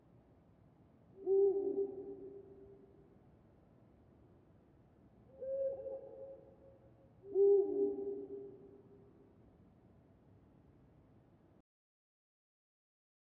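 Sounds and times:
quiet hiss: 0:00.0 - 0:11.6
Eurasian eagle-owl hooting at night in a forest: 0:01.2 - 0:02.6, 0:05.3 - 0:06.5, 0:07.2 - 0:08.6.

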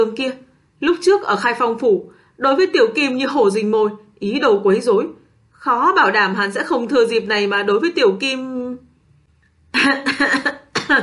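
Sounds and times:
speech: 0:00.0 - 0:08.9, 0:09.7 - 0:11.0
dry racking coughing in a violent fit: 0:09.8 - 0:11.0.

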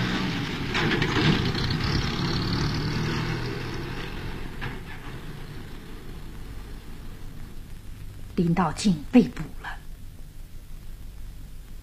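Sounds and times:
small car engine as the car drives off: 0:00.0 - 0:07.7
speech: 0:08.4 - 0:09.6.

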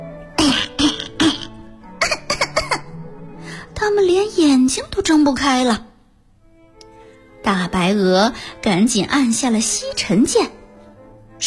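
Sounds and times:
people coughing from thick smoke beside a fire engine: 0:00.4 - 0:03.0
speech: 0:03.9 - 0:05.9, 0:07.5 - 0:10.6.

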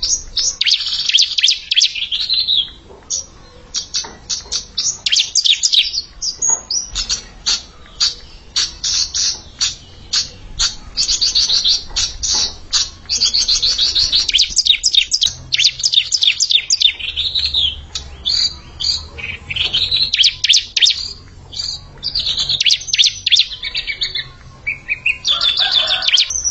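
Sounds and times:
Bar-winged prinia song: 0:00.0 - 0:26.4.

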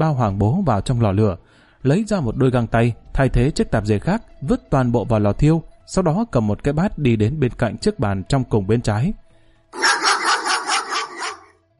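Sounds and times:
speech: 0:00.0 - 0:09.9
dog barking: 0:09.8 - 0:11.5.

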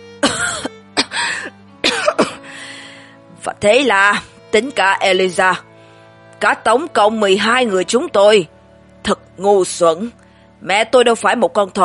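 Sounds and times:
man coughing: 0:00.2 - 0:01.2, 0:01.8 - 0:02.4
speech: 0:03.6 - 0:05.7, 0:06.4 - 0:11.8.

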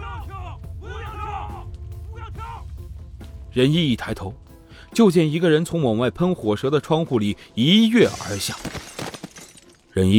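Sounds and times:
group of soldiers shouting at a fire scene: 0:00.0 - 0:02.7
speech: 0:03.6 - 0:08.9, 0:10.0 - 0:10.1.

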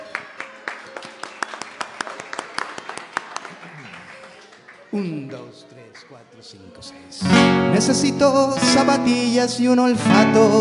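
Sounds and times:
audience clapping in a steady quick rhythm at a live music event: 0:00.0 - 0:06.2
speech: 0:04.9 - 0:10.5.

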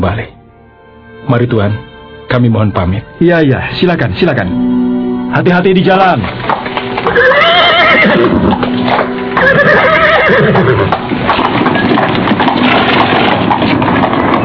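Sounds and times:
speech: 0:00.0 - 0:00.4, 0:01.3 - 0:07.3
clip-clop hooves of a departing horse-drawn cart: 0:05.6 - 0:14.4
horse whinnying: 0:06.4 - 0:14.4.

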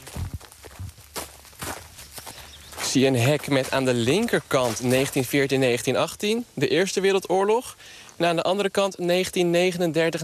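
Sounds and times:
footsteps crunching along a cemetery path: 0:00.0 - 0:06.4
speech: 0:02.9 - 0:10.2.

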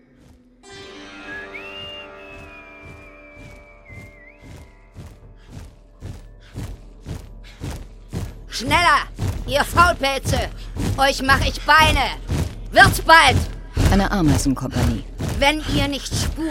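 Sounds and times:
footsteps of a man walking toward a tunnel exit: 0:00.0 - 0:01.0, 0:01.8 - 0:16.4
man whistling cheerfully while walking toward a tunnel exit: 0:01.2 - 0:05.2
speech: 0:08.6 - 0:16.4.

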